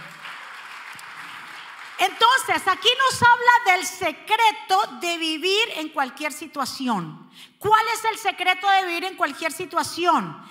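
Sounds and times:
crowd clapping steadily and densely: 0.0 - 3.0
speech: 2.0 - 10.5.

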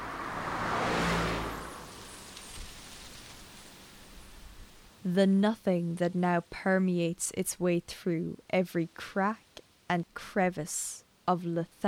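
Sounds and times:
car passing: 0.0 - 3.4
speech: 5.0 - 11.8.

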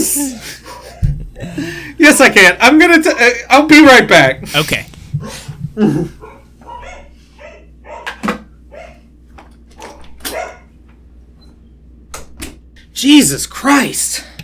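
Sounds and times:
two dogs barking with higher yips: 0.6 - 1.2, 6.1 - 9.1, 9.8 - 10.8
speech: 2.1 - 4.9, 5.8 - 6.2, 13.0 - 14.3.

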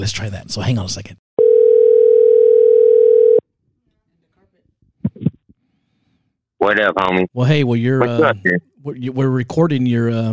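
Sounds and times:
speech: 0.0 - 1.2, 6.6 - 10.3
telephone dial tone while placing a call: 1.4 - 3.4.

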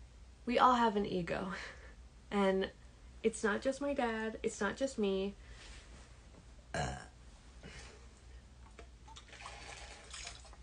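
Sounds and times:
speech: 0.5 - 5.5, 6.8 - 7.1
person burping: 6.7 - 7.2.

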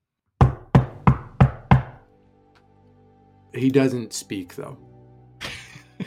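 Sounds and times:
firm knocking on a wooden wagon door: 0.4 - 2.0
speech: 3.5 - 5.0.

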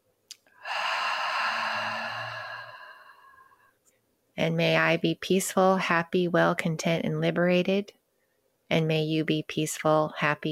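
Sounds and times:
deep breath in and out during a guided meditation: 0.5 - 3.8
speech: 4.4 - 8.0, 8.7 - 10.5.

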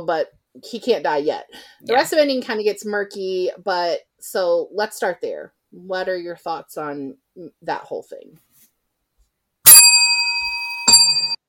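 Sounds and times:
speech: 0.0 - 8.5
bright bicycle-style bell ringing: 9.7 - 11.4.

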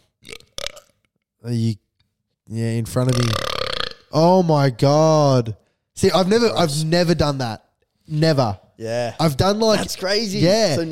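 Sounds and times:
loud deep burp: 0.0 - 1.0, 3.0 - 4.2
speech: 1.4 - 1.8, 2.5 - 3.5, 4.1 - 10.9.

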